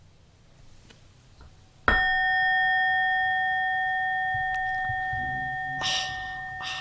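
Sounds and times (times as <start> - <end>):
gong struck and ringing: 1.9 - 6.7.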